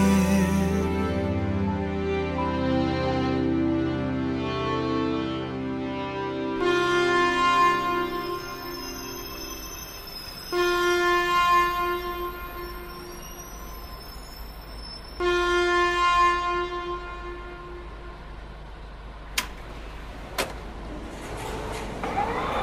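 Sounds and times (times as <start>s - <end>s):
low rail rumble: 0.0s - 22.6s
express train horn blasts as the train departs: 6.6s - 13.9s, 15.2s - 18.4s.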